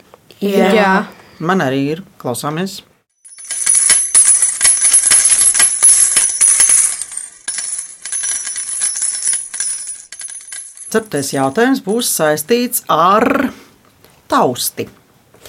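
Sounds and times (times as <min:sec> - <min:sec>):
speech: 0:00.4 - 0:02.9, 0:10.9 - 0:13.6, 0:14.3 - 0:15.0
coins jingling in a small bag: 0:03.2 - 0:11.7.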